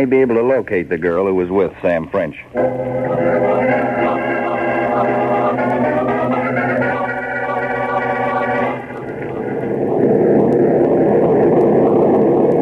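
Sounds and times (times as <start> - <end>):
speech: 0.0 - 4.2
airplane engine drone in flight with a tailwind: 2.5 - 12.5.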